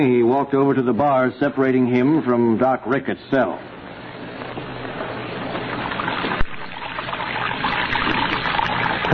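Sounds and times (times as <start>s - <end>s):
speech: 0.0s - 3.7s
water pouring from a wash basin onto a jail cell floor: 5.4s - 9.1s.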